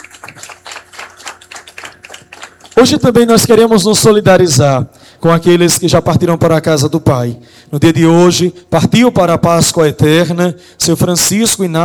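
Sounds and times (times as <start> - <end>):
applause from a gathering: 0.0 - 3.2
speech: 2.8 - 11.8.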